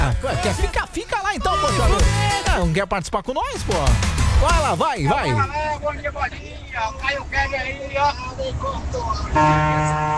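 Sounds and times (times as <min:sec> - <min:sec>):
speech: 0:00.1 - 0:02.0, 0:02.6 - 0:10.1
vehicle horn sustained honk: 0:09.2 - 0:10.1.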